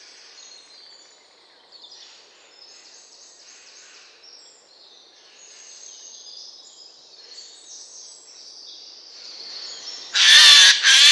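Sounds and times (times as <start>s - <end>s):
Eurasian jay Garrulus glandarius screeching: 10.2s - 11.0s.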